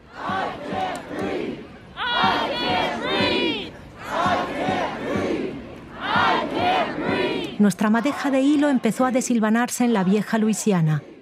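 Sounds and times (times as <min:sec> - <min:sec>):
large protest crowd shouting in the street: 0:00.0 - 0:08.9
speech: 0:07.6 - 0:11.1.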